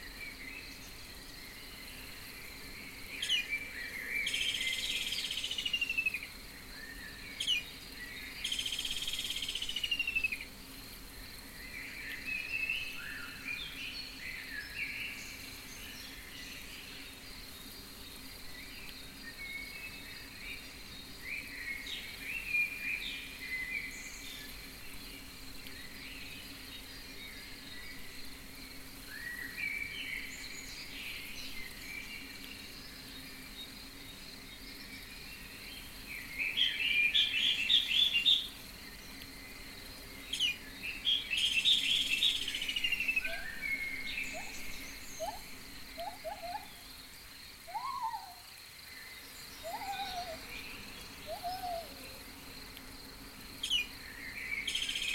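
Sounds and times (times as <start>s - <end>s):
jungle ambience: 0.0s - 55.1s.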